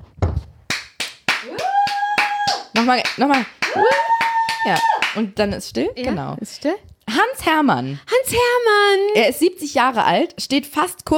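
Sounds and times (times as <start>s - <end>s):
hand claps: 0.7s - 5.3s
speech: 2.8s - 11.1s.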